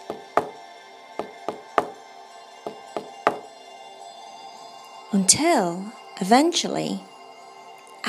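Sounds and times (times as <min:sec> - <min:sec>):
woodpecker knocking on a tree: 0:00.1 - 0:00.6, 0:01.2 - 0:02.0, 0:02.7 - 0:03.4
speech: 0:05.1 - 0:07.1.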